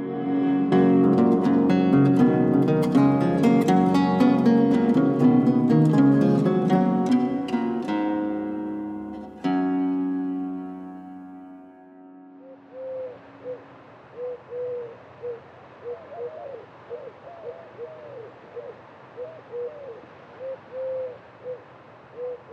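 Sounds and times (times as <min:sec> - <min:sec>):
steady broadband hiss: 0:00.0 - 0:11.6, 0:12.4 - 0:22.5
Eurasian collared dove cooing: 0:12.4 - 0:22.5.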